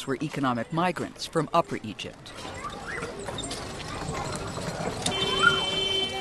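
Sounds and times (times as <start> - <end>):
speech: 0.0 - 2.4
busy street ambience in a garbage-recycling neighbourhood of Cairo: 0.0 - 6.2
donkey cart hooves clopping through a narrow alley in Cairo, Egypt: 2.3 - 6.2.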